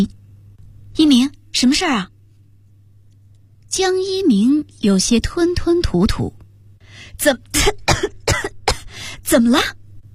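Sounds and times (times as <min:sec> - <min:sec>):
speech: 0:01.0 - 0:02.1, 0:03.7 - 0:06.4, 0:07.2 - 0:08.2, 0:09.3 - 0:09.8
person coughing harshly after nearly choking: 0:07.6 - 0:09.0.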